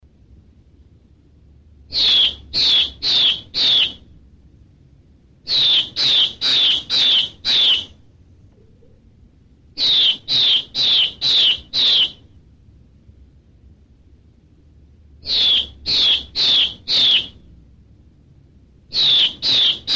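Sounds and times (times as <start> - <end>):
hwamei singing: 1.9 - 4.0, 5.5 - 7.9, 9.8 - 12.2, 15.2 - 17.4, 18.9 - 19.9.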